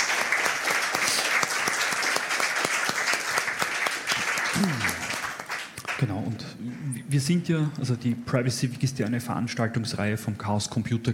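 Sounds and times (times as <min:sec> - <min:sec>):
audience applause: 0:00.0 - 0:06.2
speech: 0:07.1 - 0:11.1.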